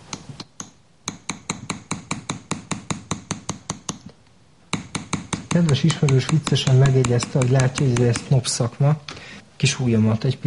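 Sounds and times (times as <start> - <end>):
small hammer tapping a metal chasing tool smoothing an acanthus leaf ornament: 0.1 - 4.1, 4.7 - 8.4
speech: 5.6 - 10.4.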